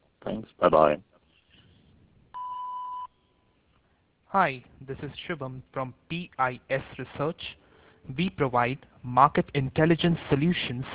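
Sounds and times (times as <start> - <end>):
speech: 0.3 - 1.1, 4.3 - 10.9
voicemail answering-machine beep: 2.4 - 3.2.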